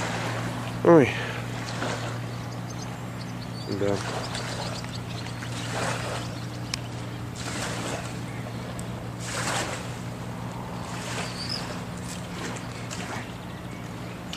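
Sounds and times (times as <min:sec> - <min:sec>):
water splashing as boats are launched: 0:00.0 - 0:14.0
steady low boat motor drone: 0:00.0 - 0:14.3
speech: 0:00.8 - 0:01.3, 0:03.7 - 0:04.6.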